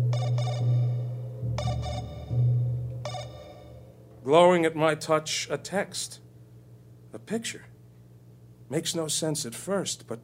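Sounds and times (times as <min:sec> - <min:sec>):
phone notification chime: 0:00.1 - 0:03.8
speech: 0:04.2 - 0:06.2, 0:07.1 - 0:07.7, 0:08.7 - 0:10.2.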